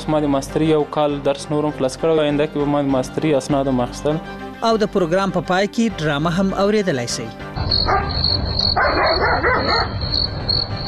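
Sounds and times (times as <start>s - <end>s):
speech: 0.0s - 10.8s
shrill pulsing insect-like chirring: 7.6s - 10.8s
dog barking roughly: 7.8s - 10.0s.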